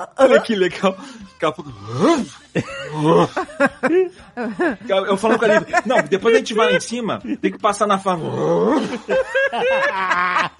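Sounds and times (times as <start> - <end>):
laughter: 0.0 - 7.6, 8.6 - 10.5
speech: 0.0 - 10.5
person imitating an animal growl: 1.6 - 3.4, 8.2 - 8.9.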